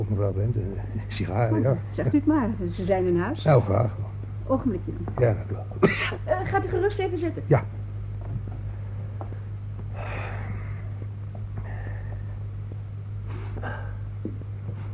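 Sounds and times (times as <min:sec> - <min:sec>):
speech: 0:00.0 - 0:07.8
steady low hum: 0:00.0 - 0:14.9
person sniffing: 0:13.3 - 0:14.1.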